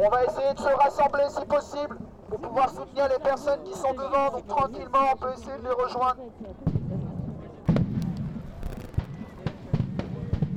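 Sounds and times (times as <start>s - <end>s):
speech: 0.0s - 6.8s
crowd voices at a protest: 0.0s - 10.5s
stun grenades exploding at a protest: 7.8s - 9.2s
rumble: 7.8s - 9.3s.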